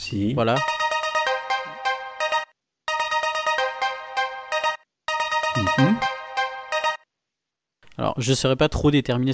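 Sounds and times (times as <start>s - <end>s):
speech: 0.1s - 0.8s, 8.0s - 9.3s
dry synthetic bell tones in a song intro: 0.6s - 7.0s.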